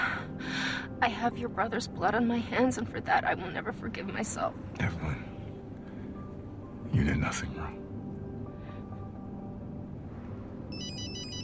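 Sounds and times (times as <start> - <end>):
steady low hum: 0.0 - 11.4
speech: 1.0 - 5.3, 6.9 - 7.8
phone with bright electronic warbling ringtone for incoming call: 10.7 - 11.4.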